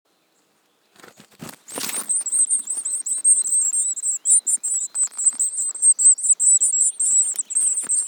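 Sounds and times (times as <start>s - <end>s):
Eurasian Blue Tit Cyanistes caeruleus calls: 1.7s - 8.0s.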